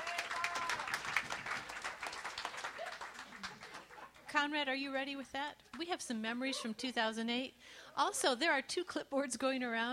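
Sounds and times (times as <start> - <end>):
audience applause: 0.0 - 4.1
people cheering: 0.0 - 4.2
speech: 4.3 - 9.9.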